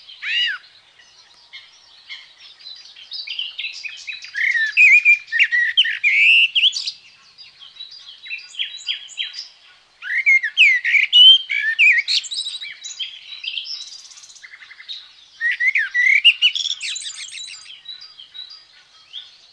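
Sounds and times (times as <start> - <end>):
common blackbird singing: 0.0 - 19.5.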